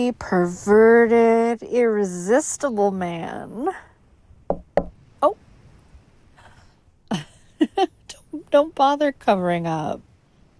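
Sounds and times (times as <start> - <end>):
speech: 0.0 - 3.9, 4.8 - 5.4, 7.1 - 10.1
sharp knocks on a door: 4.5 - 5.0.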